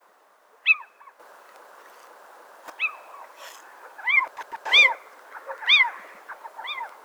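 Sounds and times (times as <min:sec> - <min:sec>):
little owl Athene noctua giving short arched yelping calls: 0:02.7 - 0:07.0.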